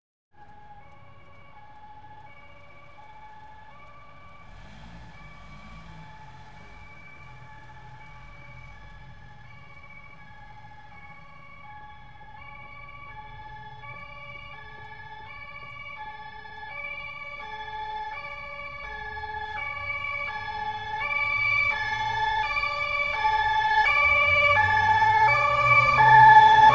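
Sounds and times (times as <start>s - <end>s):
approaching emergency vehicle siren: 0.3s - 26.7s.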